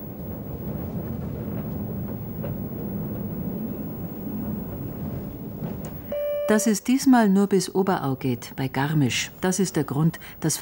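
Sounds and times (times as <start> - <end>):
glass-roofed panoramic train running on scenic rail line out of Munich: 0.0 - 9.6
speech: 6.5 - 10.6.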